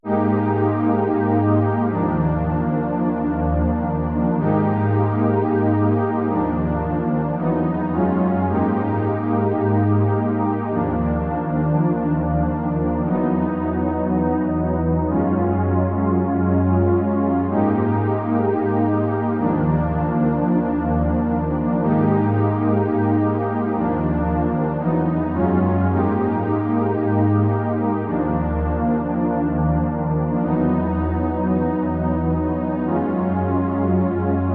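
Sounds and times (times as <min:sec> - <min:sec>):
1980s-style synth strings: 0:00.0 - 0:34.5.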